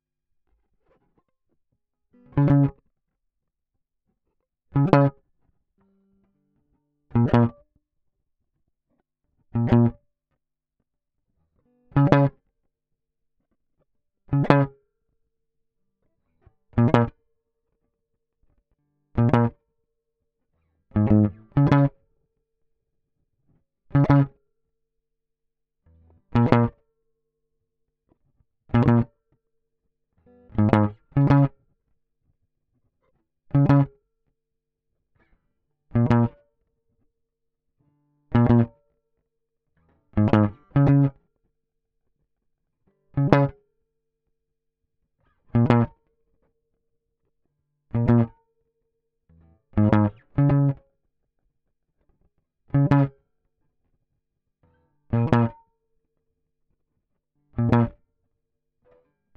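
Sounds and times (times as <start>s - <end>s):
guitar pluck: 2.1s - 2.8s, 4.8s - 5.2s, 5.8s - 7.6s, 9.6s - 10.0s, 11.6s - 12.4s, 14.3s - 14.8s, 16.7s - 17.2s, 19.2s - 19.6s, 20.9s - 22.0s, 23.9s - 24.4s, 25.9s - 26.8s, 28.7s - 29.1s, 30.2s - 31.6s, 33.5s - 33.9s, 35.9s - 36.4s, 38.3s - 38.8s, 39.8s - 41.2s, 43.2s - 43.6s, 45.5s - 46.0s, 47.9s - 48.4s, 49.3s - 50.8s, 52.7s - 53.1s, 54.6s - 55.6s, 57.6s - 58.0s.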